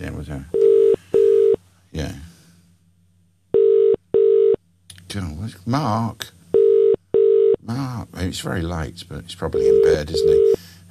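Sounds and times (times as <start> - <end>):
speech: 0.0 - 0.6, 5.2 - 6.4, 7.7 - 10.8
telephone ringback tone on an outgoing call: 3.6 - 4.6, 6.6 - 7.6, 9.6 - 10.6.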